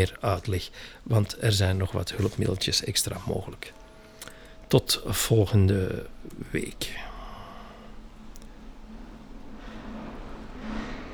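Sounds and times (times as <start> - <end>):
speech: 0.0 - 3.8, 4.7 - 7.1
heavy truck rumbling past: 3.2 - 11.1.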